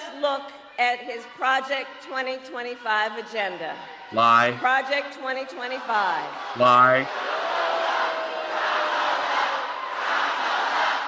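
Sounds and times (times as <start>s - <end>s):
speech: 0.2s - 7.4s
large rally crowd roaring and chanting a name in unison: 3.7s - 4.6s, 5.6s - 11.0s.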